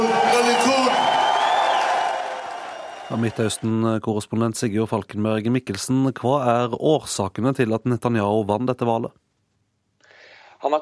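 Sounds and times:
large crowd of supporters cheering and shouting at election victory: 0:00.0 - 0:03.4
people whooping: 0:00.0 - 0:03.4
speech: 0:03.1 - 0:09.2, 0:10.6 - 0:10.8.

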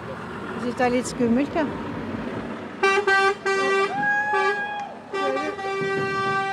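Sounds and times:
speech: 0:00.6 - 0:01.9
horn blasts of a huge car driving toward a crowd: 0:02.8 - 0:06.5.

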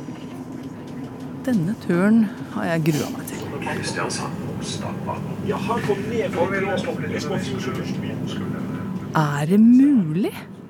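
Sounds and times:
low rumble inside the cabin of a moving train: 0:00.0 - 0:10.6
speech: 0:01.5 - 0:10.6.

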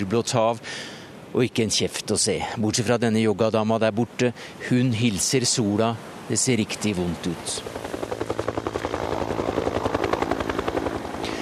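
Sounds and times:
speech: 0:00.0 - 0:08.3
helicopter rotor blades chopping over a long island beach: 0:07.3 - 0:11.4.

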